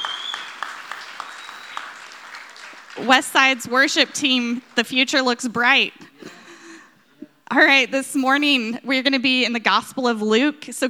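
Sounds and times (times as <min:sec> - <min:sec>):
audience applause: 0:00.0 - 0:05.6
speech: 0:03.0 - 0:06.1, 0:07.5 - 0:10.8.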